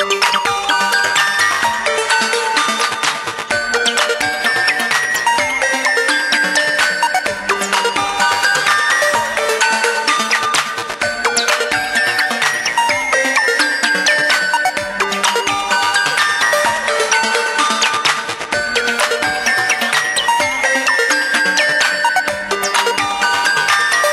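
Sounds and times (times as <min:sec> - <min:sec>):
HTC music box ringtone: 0:00.0 - 0:24.1.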